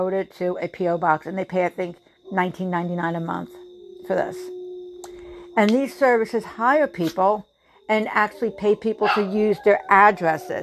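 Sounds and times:
speech: 0:00.0 - 0:04.6, 0:05.6 - 0:10.6
dogs barking: 0:08.6 - 0:10.6.

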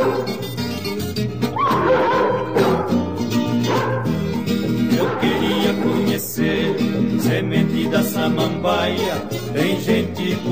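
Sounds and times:
dog barking: 0:00.0 - 0:00.4, 0:01.6 - 0:04.2, 0:04.9 - 0:06.9
busy stringed music: 0:00.0 - 0:10.5.

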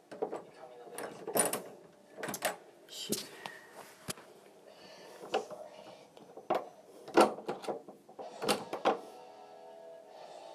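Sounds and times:
doors shut and locked: 0:00.1 - 0:02.7, 0:06.2 - 0:09.1.

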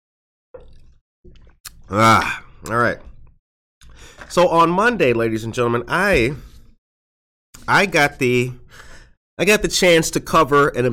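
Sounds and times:
speech: 0:00.6 - 0:03.1, 0:04.0 - 0:06.5, 0:07.7 - 0:08.8, 0:09.4 - 0:10.9
wet sipping slurps of hot coffee: 0:00.6 - 0:04.3.

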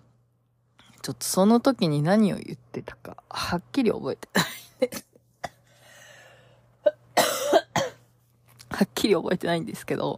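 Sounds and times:
speech: 0:01.0 - 0:05.1, 0:08.8 - 0:10.1
person coughing with a persistent cough: 0:04.4 - 0:05.7, 0:06.9 - 0:08.1.

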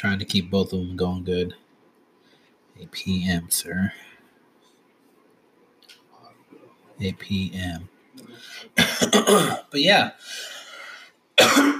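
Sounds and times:
speech: 0:00.0 - 0:01.6, 0:02.8 - 0:04.1, 0:07.0 - 0:10.6, 0:11.4 - 0:11.7
man coughing harshly: 0:08.8 - 0:09.7, 0:11.4 - 0:11.7.

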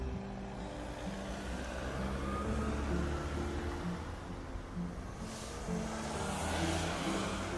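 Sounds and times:
engine and traffic rumble inside a car cabin: 0:00.0 - 0:07.5
hiss: 0:05.2 - 0:07.5.

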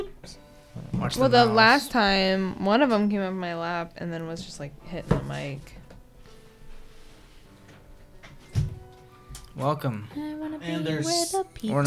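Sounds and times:
speech: 0:01.0 - 0:05.8, 0:09.6 - 0:11.8
door opening: 0:08.2 - 0:09.5.

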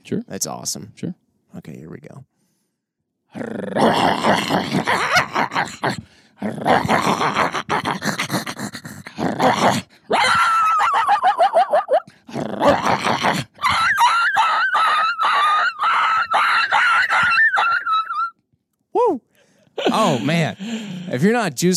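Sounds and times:
speech: 0:00.1 - 0:02.3, 0:03.3 - 0:08.2, 0:09.3 - 0:10.5, 0:20.2 - 0:21.7
coyotes fighting, snarling and growling: 0:03.3 - 0:11.3, 0:12.1 - 0:18.0
coyote short rising yelps: 0:06.6 - 0:12.0, 0:12.6 - 0:18.3
coyotes fighting, yipping and whining: 0:10.1 - 0:12.0, 0:13.6 - 0:18.4.

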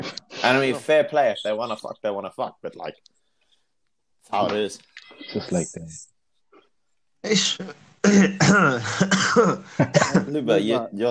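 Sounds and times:
speech: 0:00.4 - 0:03.2, 0:04.2 - 0:06.1, 0:07.2 - 0:11.0
sick person coughing: 0:08.0 - 0:10.4.

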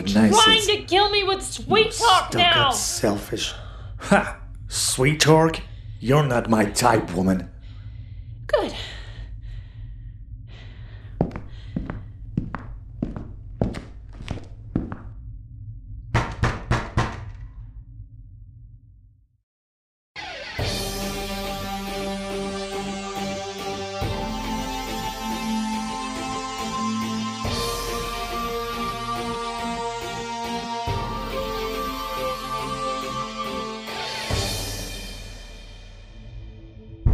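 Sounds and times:
music: 0:00.0 - 0:04.0, 0:20.2 - 0:37.1
speech: 0:00.0 - 0:07.5
low steady hum: 0:00.0 - 0:16.3
fists pounding on a door: 0:16.2 - 0:17.3.

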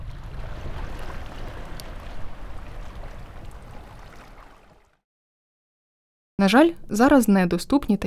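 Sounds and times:
surf rolling and churning on a moonlit night in Yevpatoria: 0:00.0 - 0:04.6
speech: 0:06.4 - 0:08.0.

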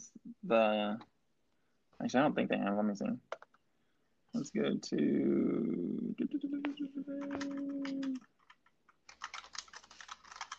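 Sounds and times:
speech: 0:00.4 - 0:01.1, 0:02.0 - 0:03.4, 0:04.3 - 0:08.3
typing on an old-school computer keyboard: 0:07.1 - 0:10.5.

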